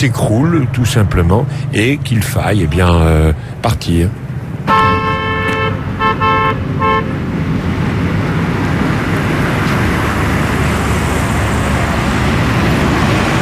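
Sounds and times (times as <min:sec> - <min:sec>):
speech: 0:00.0 - 0:05.0
old truck engine rumbling in a small alley: 0:00.0 - 0:13.4
old truck horn toots in a small alley: 0:04.6 - 0:07.2.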